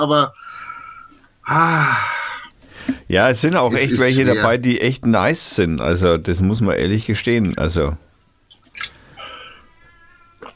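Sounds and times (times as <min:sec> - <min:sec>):
speech: 0:00.0 - 0:00.6, 0:01.5 - 0:02.2, 0:03.1 - 0:08.0
cat yowling in a drawn-out wavering cry: 0:09.2 - 0:10.5.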